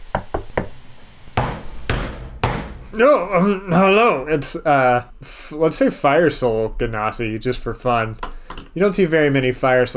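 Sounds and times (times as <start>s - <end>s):
knocking on a door: 0.6s - 3.1s
speech: 2.9s - 9.9s.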